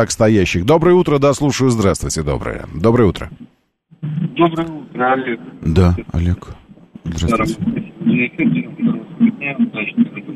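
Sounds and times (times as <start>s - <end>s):
speech: 0.0s - 10.1s
radio playing in caller's background over a band-limited phone line: 2.9s - 10.3s.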